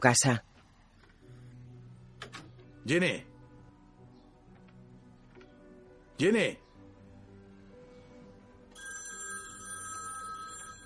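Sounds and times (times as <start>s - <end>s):
speech: 0.0s - 0.5s, 2.8s - 3.3s, 6.2s - 6.6s
telephone ringing inside a house: 8.7s - 10.8s.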